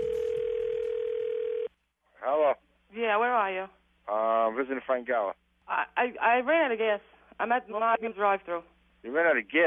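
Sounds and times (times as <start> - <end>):
telephone dial tone: 0.0 - 1.7
hiss: 0.0 - 9.6
speech: 3.1 - 9.6.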